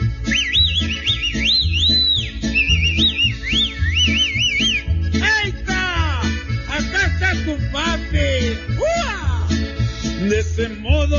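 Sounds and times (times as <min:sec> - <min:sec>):
low rhythmic musical backing: 0:00.0 - 0:11.1
person whistling a discreet wavering looping call to signal a sweetheart: 0:00.2 - 0:04.9.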